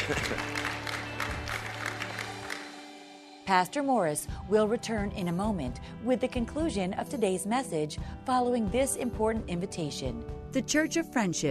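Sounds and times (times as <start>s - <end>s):
church audience clapping during a sermon: 0.0s - 2.9s
speech: 0.1s - 0.5s, 3.5s - 11.5s.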